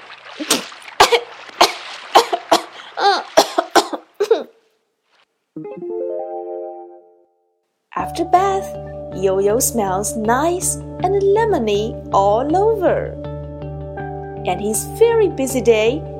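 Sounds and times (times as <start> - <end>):
child coughing after inhaling water: 0.5 - 4.6
speech: 8.3 - 13.2, 14.4 - 16.1.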